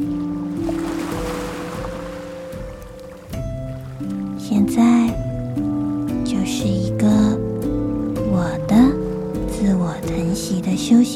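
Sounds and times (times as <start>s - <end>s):
ocean waves washing: 0.0s - 5.8s
sustained low musical tones: 0.0s - 11.1s
speech: 4.0s - 5.2s, 6.5s - 7.2s, 10.2s - 11.1s.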